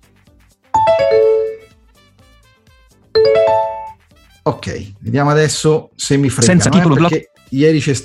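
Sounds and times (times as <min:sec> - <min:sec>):
screen reader notification chimes on a Windows computer: 0:00.8 - 0:01.6, 0:03.2 - 0:04.0
speech: 0:04.6 - 0:08.0.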